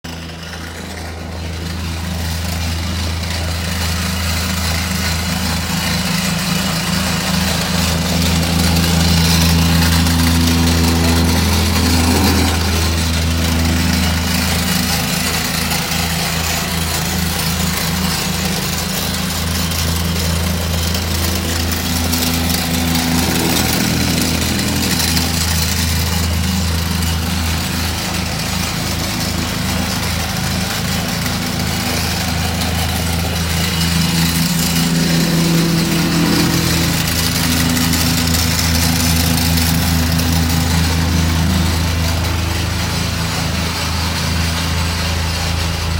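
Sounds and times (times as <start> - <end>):
concrete roller: 0.0 - 45.9.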